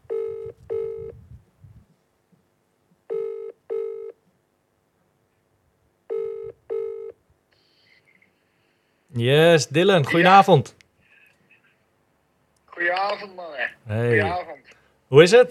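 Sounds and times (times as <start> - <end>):
ringing tone of an outgoing telephone call: 0.0 - 1.2, 3.1 - 4.2, 6.1 - 7.2
faint low noise: 0.0 - 15.5
speech: 9.2 - 10.8, 13.2 - 14.5, 15.1 - 15.5.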